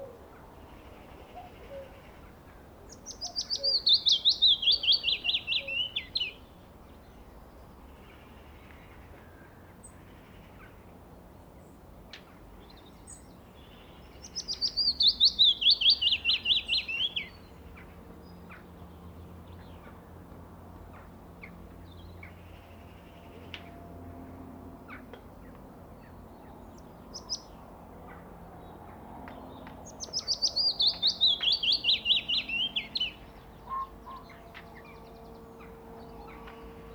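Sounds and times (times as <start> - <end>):
faint outdoor background: 0.0 - 36.9
willow warbler singing: 0.6 - 7.0, 12.7 - 17.7, 26.0 - 36.9.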